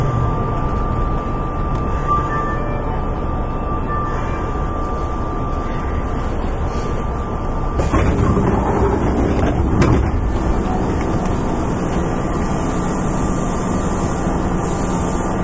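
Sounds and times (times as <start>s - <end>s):
Kintetsu Railway 7000 series train running: 0.0s - 15.4s
thin steady whine of early GTO train motor: 0.0s - 15.4s
train clattering: 7.8s - 12.8s.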